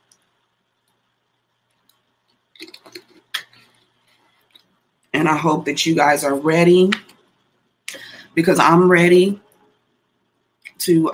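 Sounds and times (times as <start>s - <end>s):
person drinking water with sips and swallows: 1.8s - 4.8s
speech: 5.2s - 7.1s, 8.4s - 9.4s, 10.8s - 11.1s.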